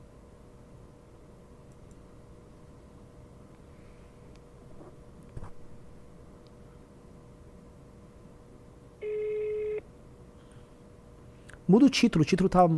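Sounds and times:
phone-line tone of an outgoing phone call: 9.0 - 9.8
speech: 11.7 - 12.7.

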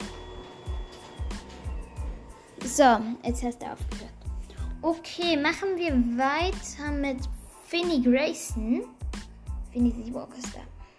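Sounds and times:
printer printing with mechanical thumps and whirring hum: 0.0 - 2.6
speech: 2.7 - 4.0, 4.8 - 9.0, 9.8 - 10.7.

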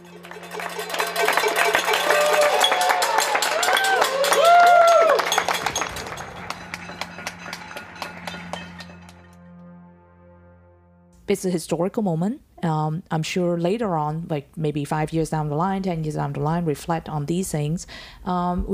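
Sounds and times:
crowds of people clapping: 0.0 - 9.5
speech: 11.3 - 18.7.

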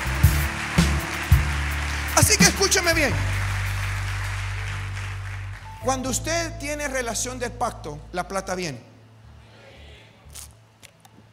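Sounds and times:
large crowd applauding loudly: 0.0 - 6.0
speech: 2.3 - 3.4, 5.8 - 8.9.

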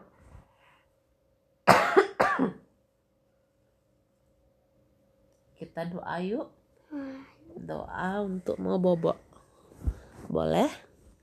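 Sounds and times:
mother coughing: 1.7 - 2.7
speech: 5.8 - 9.3, 10.3 - 10.9.

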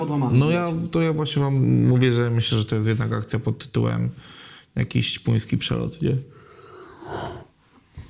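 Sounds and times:
speech: 0.0 - 6.4
person yawning: 6.6 - 7.5.

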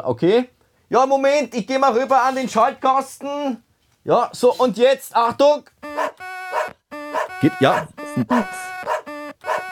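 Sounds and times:
speech: 0.0 - 5.7, 7.4 - 8.6
dog barking: 5.9 - 8.0, 8.8 - 9.7
dog whimpering whines: 6.0 - 9.6.

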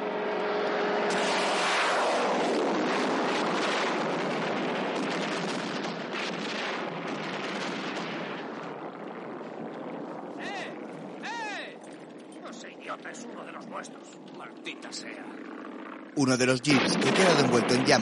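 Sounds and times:
aircraft missiles exploding in a war film: 1.1 - 12.0, 16.6 - 18.0
speech: 13.0 - 15.4, 16.2 - 18.0.

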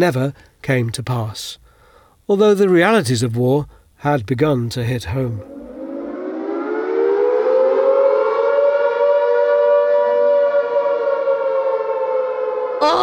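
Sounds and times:
speech: 0.0 - 1.6, 2.3 - 5.6
air raid siren wailing: 5.4 - 13.0.

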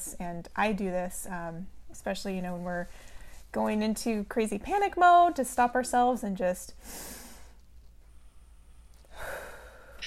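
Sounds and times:
speech: 0.1 - 7.2
deep breath inhalation as a calming exercise: 9.1 - 10.0.

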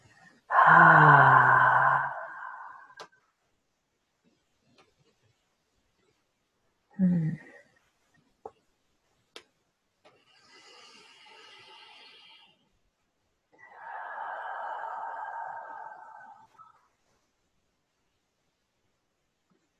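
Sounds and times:
deep breath let out as a long voiced sigh: 0.5 - 3.1, 6.9 - 7.6, 13.6 - 16.8.

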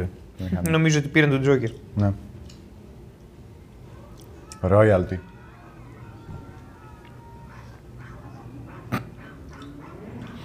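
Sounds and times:
speech: 0.0 - 2.3, 4.6 - 5.3
faint voices: 3.5 - 10.4
small dog whimpering and yelping: 5.8 - 10.4.

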